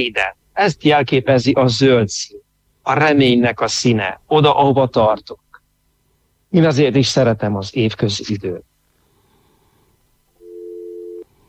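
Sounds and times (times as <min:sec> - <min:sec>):
speech: 0:00.0 - 0:05.4, 0:06.5 - 0:08.7
telephone busy signal tone: 0:10.4 - 0:11.3.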